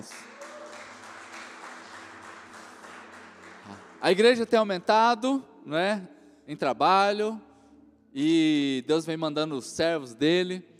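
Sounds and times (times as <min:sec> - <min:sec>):
audience applauding: 0:00.0 - 0:04.6
speech: 0:03.7 - 0:07.5, 0:08.1 - 0:10.7.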